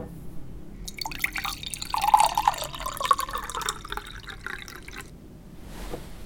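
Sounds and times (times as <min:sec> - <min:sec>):
water poured into a drinking glass: 0:00.9 - 0:05.1.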